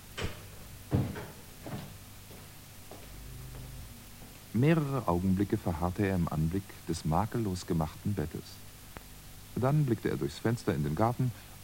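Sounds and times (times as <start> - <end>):
faint steady hiss: 0.0 - 11.6
bedroom door opening with soft wooden knocks and clunks: 0.2 - 1.4
speech: 4.6 - 8.7, 9.6 - 11.6.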